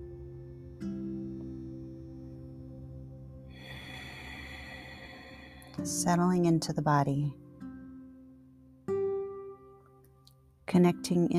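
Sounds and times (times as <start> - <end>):
slow deep breath during a guided meditation: 3.5 - 6.0
speech: 5.8 - 7.4, 10.7 - 11.3.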